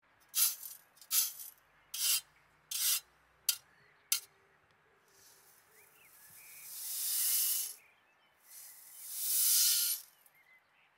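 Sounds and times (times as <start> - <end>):
güiro scraping: 0.3 - 4.3, 5.1 - 7.8, 8.5 - 10.2.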